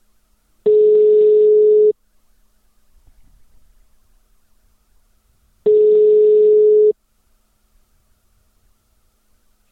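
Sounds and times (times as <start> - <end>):
ringback tone of an outgoing telephone call: 0.7 - 2.0, 5.7 - 7.0.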